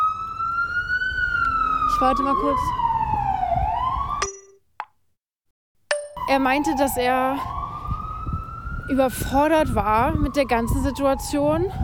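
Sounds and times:
emergency siren wailing: 0:00.0 - 0:04.2, 0:06.2 - 0:11.8
speech: 0:02.0 - 0:03.2, 0:06.3 - 0:07.6, 0:08.9 - 0:11.8.

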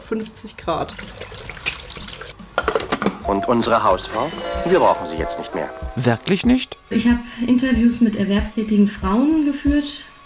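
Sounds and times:
speech: 0:00.1 - 0:01.5, 0:03.3 - 0:10.1
water poured into a food processor bowl: 0:00.8 - 0:02.4.

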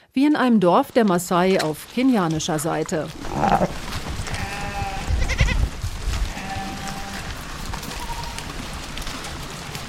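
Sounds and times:
speech: 0:00.2 - 0:03.8
herd on the move rustling with low thuds and shuffling: 0:00.9 - 0:09.8
goats and sheep bleating: 0:02.4 - 0:09.2.

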